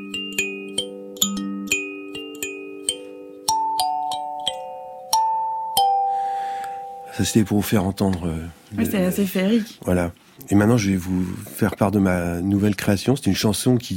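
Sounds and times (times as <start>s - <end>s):
kalimba thumb piano with small lamellae on a wooden body plucked: 0.0s - 8.0s
speech: 7.2s - 13.9s.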